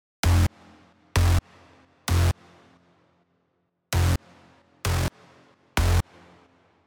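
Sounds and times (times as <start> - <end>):
bass: 0.2 - 0.6, 1.2 - 1.4, 2.1 - 2.4, 4.0 - 4.2, 4.8 - 5.1, 5.8 - 6.1.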